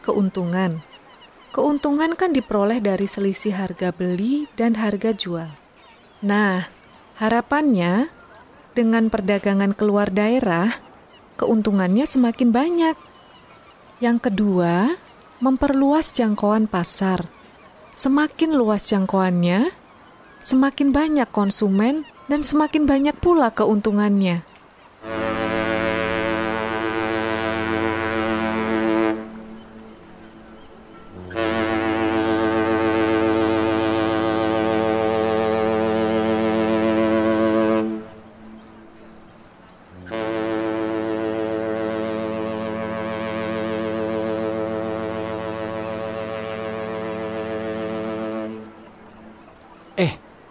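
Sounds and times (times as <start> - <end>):
speech: 0.0 - 0.9, 1.5 - 5.6, 6.2 - 8.2, 8.8 - 10.8, 11.4 - 13.1, 14.0 - 17.4, 18.0 - 19.8, 20.4 - 25.4
large ship's horn blasts: 25.0 - 50.4.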